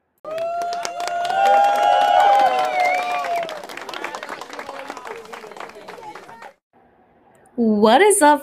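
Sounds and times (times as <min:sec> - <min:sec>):
whoops and cheers: 0:00.2 - 0:06.6
crowd applause sound effect: 0:00.3 - 0:06.6
speech: 0:07.8 - 0:08.4.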